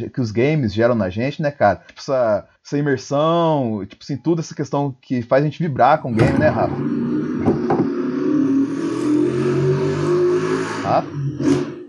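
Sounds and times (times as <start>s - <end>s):
speech: 0.0s - 7.1s, 10.9s - 11.2s
motorcycle engine passing by outside: 6.6s - 11.8s.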